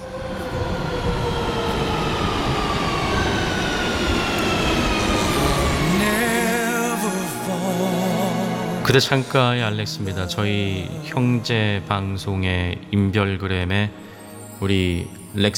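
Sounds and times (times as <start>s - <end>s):
squealing wavering train brake tones: 0.0s - 9.0s
train pulling into a station, roar of rolling wheels and machinery: 0.0s - 9.4s
speech: 8.9s - 14.0s, 14.6s - 15.5s.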